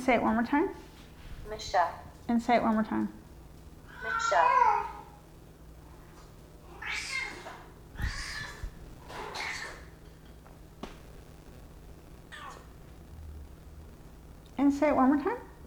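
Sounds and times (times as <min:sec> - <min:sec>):
speech: 0:00.0 - 0:00.9, 0:01.5 - 0:03.2, 0:04.0 - 0:04.9, 0:14.7 - 0:15.5
hum: 0:00.0 - 0:15.6
cat meowing: 0:03.9 - 0:05.1, 0:06.7 - 0:08.7, 0:12.3 - 0:12.7.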